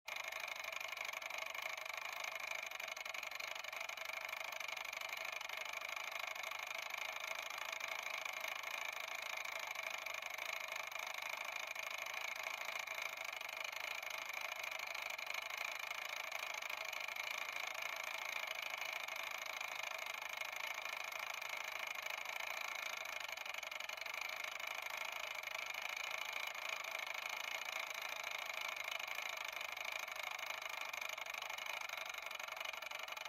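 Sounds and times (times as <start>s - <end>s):
mechanical timer: 0.1s - 33.2s.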